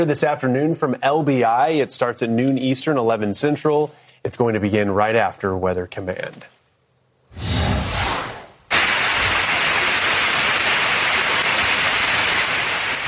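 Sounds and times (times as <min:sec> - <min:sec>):
speech: 0:00.0 - 0:06.6
whooshing rush: 0:07.3 - 0:08.7
heavy rain pouring: 0:08.7 - 0:13.0.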